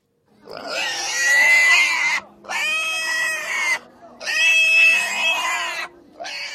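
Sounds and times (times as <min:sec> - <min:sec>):
pig squealing as it is slaughtered: 0:00.5 - 0:06.5.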